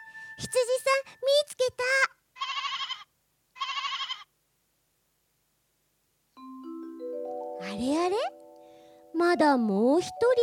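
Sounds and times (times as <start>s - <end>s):
speech: 0.4s - 2.2s, 9.3s - 10.4s
sheep bleating: 2.4s - 4.3s.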